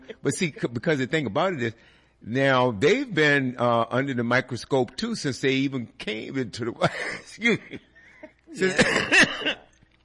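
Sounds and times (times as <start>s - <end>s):
speech: 0.2s - 7.9s, 8.5s - 9.6s
person coughing: 8.5s - 9.7s.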